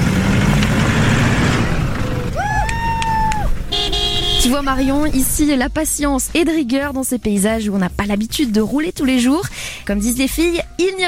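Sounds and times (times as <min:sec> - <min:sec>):
rally car engine revving while pulling away through sand: 0:00.0 - 0:05.1
speech: 0:04.4 - 0:11.0.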